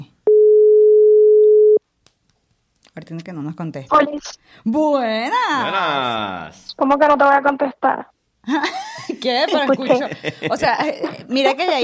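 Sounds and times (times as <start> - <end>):
telephone call tone while dialing: 0.3 - 1.8
speech: 3.0 - 11.8
laughter: 8.5 - 11.8.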